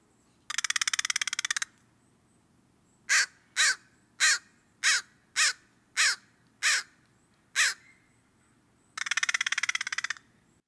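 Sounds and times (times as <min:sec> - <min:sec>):
American crow cawing: 0:00.5 - 0:01.7, 0:03.1 - 0:07.0, 0:07.6 - 0:08.0, 0:09.0 - 0:10.3.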